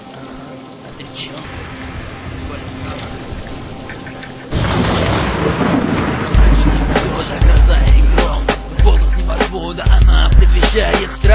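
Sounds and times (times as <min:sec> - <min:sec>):
heavy rain pouring: 0:00.0 - 0:11.3
deep rolling thunder: 0:00.9 - 0:11.3
speech: 0:01.2 - 0:01.9
sharp thunder cracks: 0:01.4 - 0:08.9.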